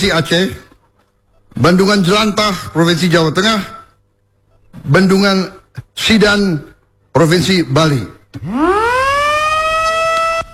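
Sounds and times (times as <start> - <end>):
speech: 0.0 - 0.6, 1.6 - 3.8, 4.7 - 8.8
siren wailing at dam inauguration ceremony in Lombok, West Nusa Tenggara: 8.4 - 10.5.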